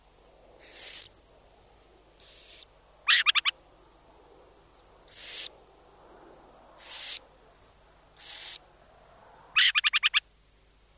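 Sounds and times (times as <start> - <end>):
burrowing owl hissing rasps: 0.6 - 1.1, 2.2 - 3.5, 5.1 - 5.5, 6.8 - 7.2, 8.2 - 8.6, 9.6 - 10.2.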